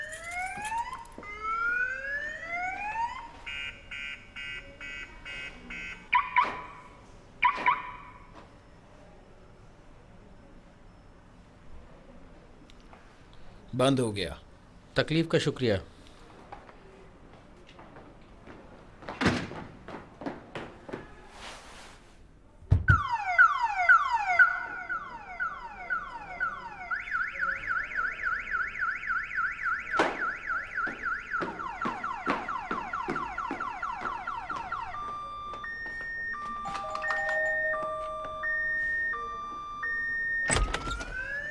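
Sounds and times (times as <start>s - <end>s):
car alarm blaring: 0.0s - 6.8s, 7.4s - 8.3s, 22.9s - 41.4s
speech: 13.8s - 15.9s.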